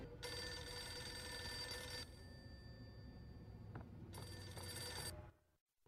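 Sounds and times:
telephone bell ringing: 0.0 - 3.5, 4.1 - 5.2.

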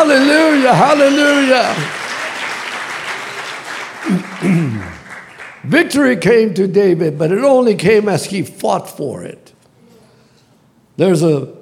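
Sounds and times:
sustained crowd applause: 0.0 - 5.7
speech: 0.1 - 2.0, 5.6 - 9.5, 11.0 - 11.6.

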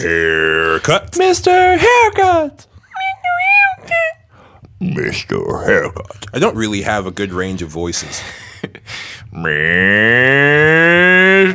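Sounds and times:
person imitating a cow mooing: 0.0 - 2.4, 9.3 - 11.5
speech: 0.0 - 2.6, 4.8 - 8.4, 9.4 - 11.5
laughter: 0.0 - 4.2, 5.7 - 11.5.

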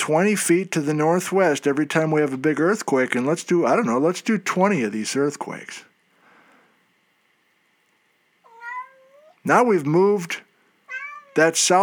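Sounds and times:
speech: 0.0 - 5.9, 9.4 - 10.5, 11.4 - 11.8
faint steady hum: 0.0 - 11.8
cat meowing: 8.4 - 9.4, 10.9 - 11.4.

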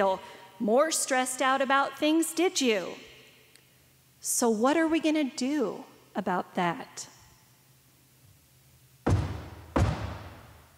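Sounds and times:
speech: 0.0 - 3.1, 4.2 - 7.1
preacher stomping on a floor during a church service: 9.1 - 10.6.

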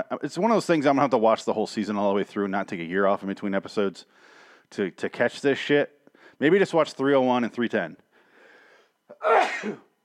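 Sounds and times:
speech: 0.1 - 8.0, 9.1 - 9.9
loud sneeze with sharp intake of breath: 9.1 - 9.9.

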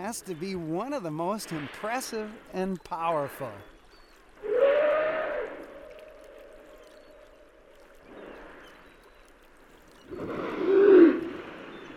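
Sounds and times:
rushing water: 0.0 - 11.9
speech: 0.1 - 3.7
humpback whale tonal call while feeding on herring: 4.4 - 7.8, 10.1 - 11.8.

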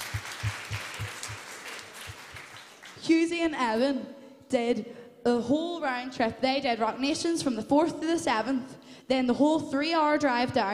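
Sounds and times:
audience applause: 0.0 - 3.0
louder rhythmic claps: 0.0 - 3.2
speech: 3.1 - 10.7.

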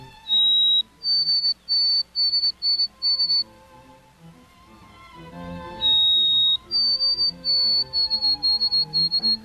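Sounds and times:
White-throated Sparrow song: 0.0 - 3.5, 5.7 - 9.4.

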